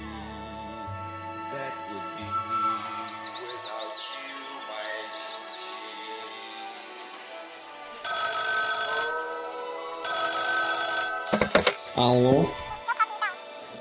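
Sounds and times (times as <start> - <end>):
softer high chirping tones: 2.2 - 4.2
telephone ringing in a bar: 8.0 - 12.7
speech: 12.0 - 12.6.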